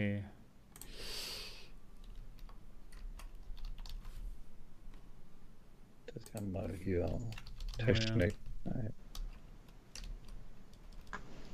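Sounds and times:
speech: 0.0s - 0.4s, 6.1s - 9.0s
typing on a computer keyboard: 2.0s - 4.1s, 6.2s - 11.2s.

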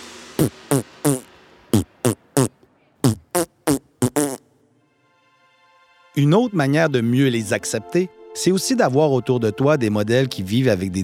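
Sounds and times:
speech: 0.4s - 0.9s, 6.2s - 11.0s
loud fart noises: 0.4s - 4.5s.

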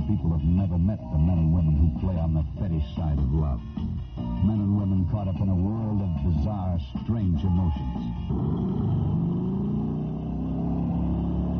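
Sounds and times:
speech: 0.2s - 9.6s
motorcycle engine revving: 8.1s - 11.5s.

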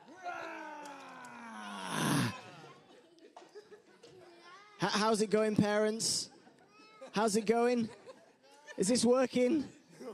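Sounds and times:
scattered murmurs: 0.0s - 10.1s
group of children imitating lion roars: 0.1s - 2.7s
speech: 4.8s - 6.3s, 7.2s - 8.0s, 8.8s - 9.8s.

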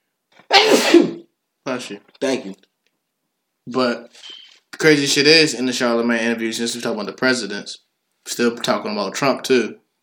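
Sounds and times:
loud sneeze: 0.4s - 1.3s
speech: 1.8s - 2.7s, 3.7s - 9.8s.

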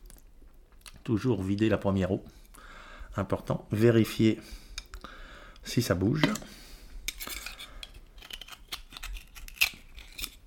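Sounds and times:
speech: 1.1s - 2.4s, 3.2s - 4.6s, 5.6s - 6.6s
knife scraping and prying at an oyster shell: 7.1s - 10.4s.

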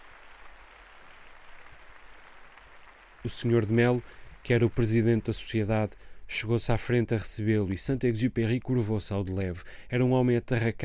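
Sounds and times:
hall full of people applauding at a society reception: 0.0s - 5.8s
speech: 3.2s - 10.8s.

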